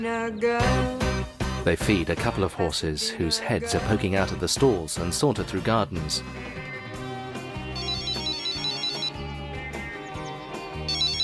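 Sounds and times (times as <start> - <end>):
speech: 0.0 - 1.0, 1.6 - 6.7
cell phone ringing inside a bag indoors: 7.8 - 9.3, 10.8 - 11.2.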